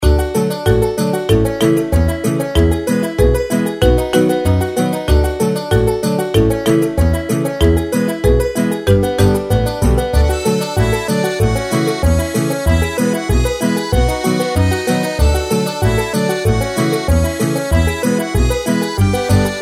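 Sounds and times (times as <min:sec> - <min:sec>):
background music for games: 0:00.1 - 0:19.5.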